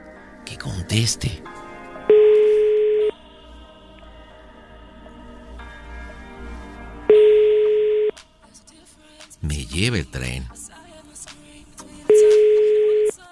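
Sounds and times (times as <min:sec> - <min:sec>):
speech: 0:00.6 - 0:01.6, 0:09.8 - 0:10.6
ringback tone of an unanswered telephone call: 0:02.1 - 0:03.2, 0:07.1 - 0:08.2, 0:12.1 - 0:13.2.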